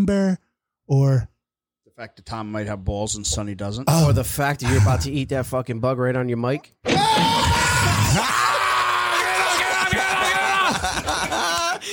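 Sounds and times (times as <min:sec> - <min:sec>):
speech: 0:00.0 - 0:01.3, 0:02.0 - 0:08.5
man yelling: 0:07.2 - 0:11.0
laughter: 0:09.2 - 0:11.9.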